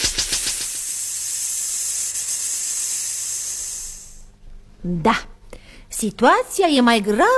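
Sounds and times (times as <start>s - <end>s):
air hissing out of punctured tire: 0.0s - 4.3s
speech: 4.8s - 5.3s, 6.0s - 7.3s.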